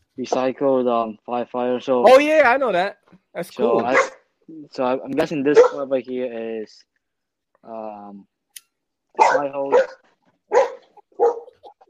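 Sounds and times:
speech: 0.2s - 6.9s, 7.6s - 8.3s, 9.2s - 10.6s
dog barking: 3.7s - 4.2s, 5.5s - 5.9s, 9.2s - 11.7s.

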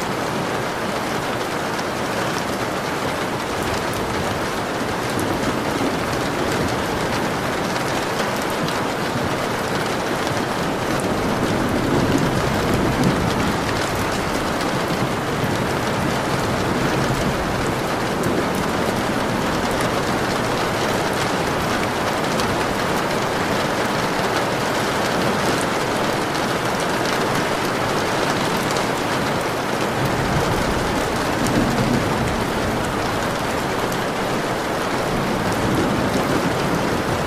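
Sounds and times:
dense steady storm rain hissing: 0.0s - 37.2s.

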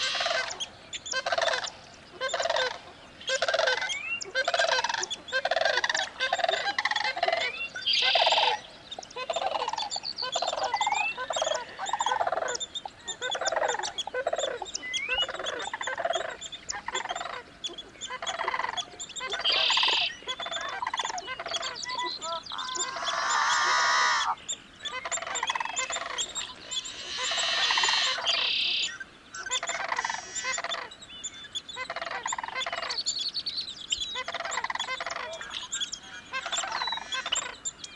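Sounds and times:
sandhill cranes calling with rolling rattling bugles: 0.0s - 33.1s, 34.2s - 37.9s.

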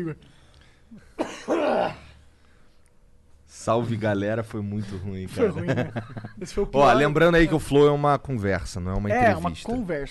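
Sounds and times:
speech: 0.0s - 2.0s, 3.5s - 10.1s
person coughing: 1.0s - 2.2s
throat clearing: 1.0s - 2.2s
laughter: 5.4s - 6.7s.

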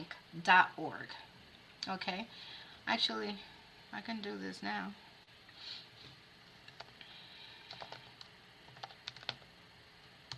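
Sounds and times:
speech: 0.4s - 5.0s
typing on a computer keyboard: 6.7s - 6.9s, 7.7s - 9.4s.

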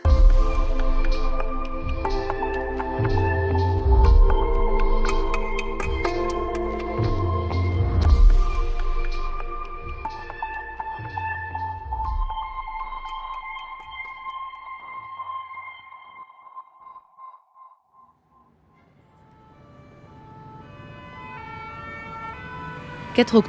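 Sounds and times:
fire engine and police car sirens wailing at the Place de la Nation in Paris: 0.0s - 14.2s, 19.0s - 23.4s
speech: 23.2s - 23.4s.

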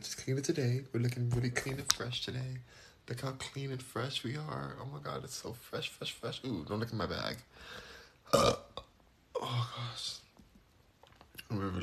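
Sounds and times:
speech: 0.0s - 8.6s, 9.4s - 10.2s, 11.5s - 11.8s
person burping: 8.2s - 9.7s.

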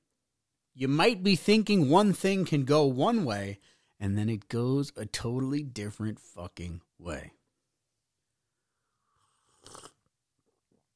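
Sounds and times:
speech: 0.8s - 7.4s
person sipping coffee: 8.9s - 10.6s.

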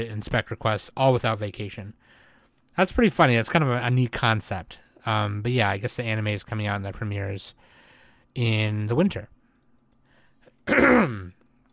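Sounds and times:
speech: 0.0s - 2.2s, 2.8s - 7.7s, 8.4s - 9.3s, 10.7s - 11.4s
throat clearing from a dry throat: 10.6s - 11.4s.

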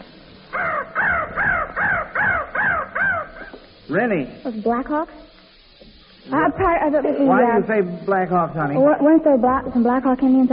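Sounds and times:
crow cawing sound effect: 0.5s - 3.6s
speech: 3.9s - 5.3s, 6.2s - 10.5s.

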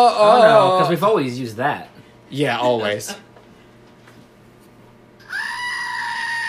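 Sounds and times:
speech: 0.0s - 3.3s
small hairless plastic screaming goat toy squeezed: 5.2s - 6.4s.

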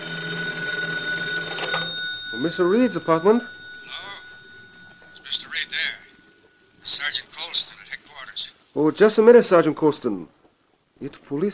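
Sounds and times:
old telephone bell ringing: 0.0s - 6.4s
faint hiss: 2.3s - 11.5s
speech: 2.4s - 3.6s, 8.8s - 10.4s, 11.0s - 11.5s.

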